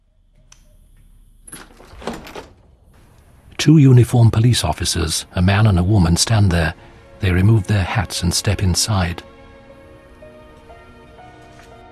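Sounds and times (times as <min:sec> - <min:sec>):
house front door rattling and rustling as it swings open at night: 0:01.5 - 0:03.0
speech: 0:03.6 - 0:09.4.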